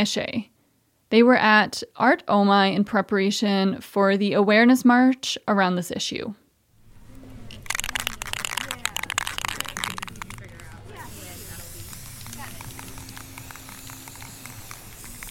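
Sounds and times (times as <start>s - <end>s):
speech: 0.0s - 0.5s, 1.1s - 6.4s
spray paint hissing onto a cardboard sign: 7.1s - 15.2s.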